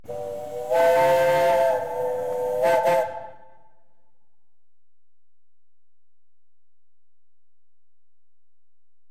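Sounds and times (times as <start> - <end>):
traction engine horn: 0.0 - 3.5.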